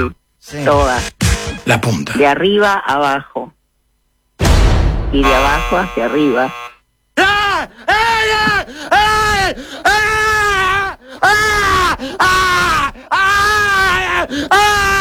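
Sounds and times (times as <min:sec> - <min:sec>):
speech: 0:00.0 - 0:03.6, 0:05.1 - 0:06.6
man screaming and groaning: 0:07.2 - 0:15.0.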